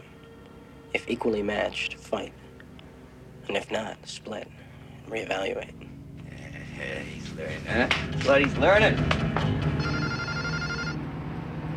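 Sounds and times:
speech: 0:01.0 - 0:02.4, 0:03.5 - 0:05.9, 0:06.8 - 0:09.7
telephone ringing in a dark apartment: 0:09.8 - 0:11.0.

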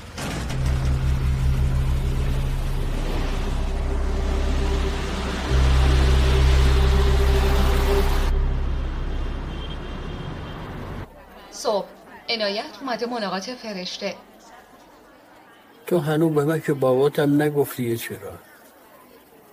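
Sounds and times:
car engine humming with a low rumble: 0:00.0 - 0:11.3
speech: 0:12.4 - 0:14.3, 0:15.9 - 0:18.5.

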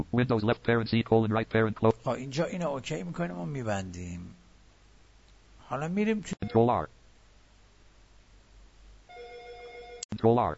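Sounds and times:
speech: 0:00.0 - 0:04.4, 0:05.7 - 0:07.0, 0:10.2 - 0:10.5
low steady hum: 0:00.0 - 0:10.5
telephone electronic ring tone with bright overtones: 0:09.1 - 0:10.1.

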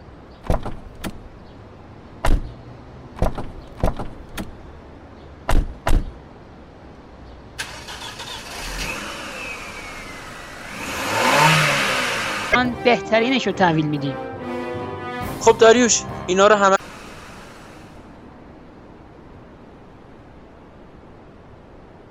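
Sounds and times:
car doors slamming: 0:00.4 - 0:01.2, 0:02.2 - 0:02.5, 0:03.2 - 0:04.6, 0:05.5 - 0:06.2
car engine starting and revving as the vehicle pulls away: 0:07.6 - 0:12.6, 0:16.8 - 0:18.0
speech: 0:12.8 - 0:14.3, 0:15.4 - 0:16.8.

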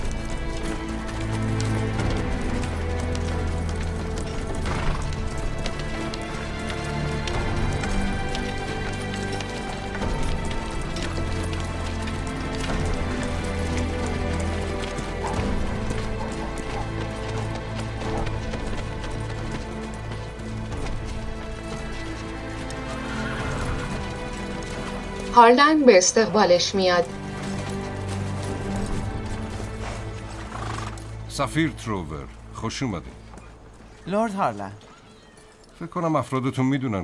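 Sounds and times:
hooves of horses carrying a woman rider and several soldiers through a gate: 0:00.0 - 0:37.0
horse whinnying: 0:22.8 - 0:24.8, 0:29.6 - 0:31.1
speech: 0:25.4 - 0:27.2, 0:31.4 - 0:33.2, 0:34.1 - 0:34.9, 0:35.8 - 0:37.0.

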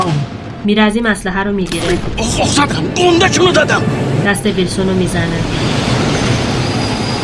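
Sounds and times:
arriving train rumbling: 0:00.0 - 0:07.2
speech: 0:00.6 - 0:05.8
train wheels squealing on the rails: 0:04.7 - 0:07.2.

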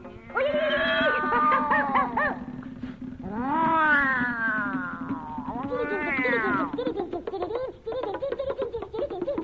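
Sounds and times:
laughter: 0:01.0 - 0:02.4, 0:05.6 - 0:09.4
cat meowing long drawn-out meows: 0:03.3 - 0:06.6.

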